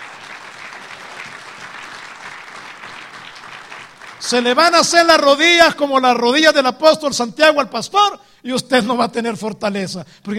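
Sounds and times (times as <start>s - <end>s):
congregation applauding during a sermon: 0.0s - 5.6s
speech: 4.2s - 10.3s.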